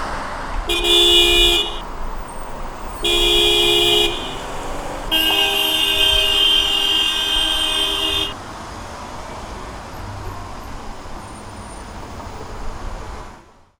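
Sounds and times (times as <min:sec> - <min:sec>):
car horns: 0:00.6 - 0:08.4.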